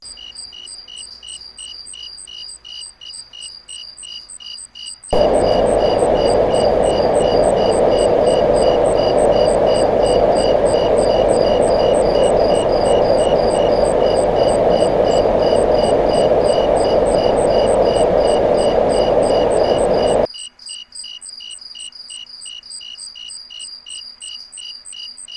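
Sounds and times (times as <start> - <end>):
low and higher pitched crickets: 0.1 - 25.3
Marpac Dohm white noise machine: 5.2 - 20.3.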